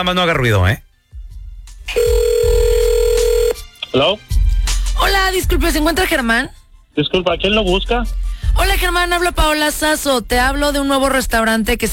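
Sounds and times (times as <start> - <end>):
speech: 0.0 - 0.9, 1.9 - 2.2, 3.9 - 4.3, 5.0 - 11.9
steady single-pitched telephone ring tone: 1.9 - 3.6.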